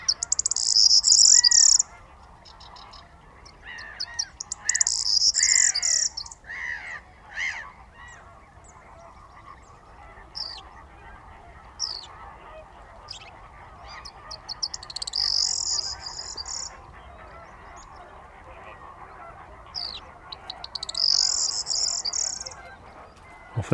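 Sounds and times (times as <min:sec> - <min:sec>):
corn bunting singing at dawn at a night roost in reeds: 0:00.0 - 0:01.9, 0:03.6 - 0:06.4, 0:14.4 - 0:16.7, 0:19.8 - 0:22.7
corn bunting chirping calls: 0:00.0 - 0:23.7.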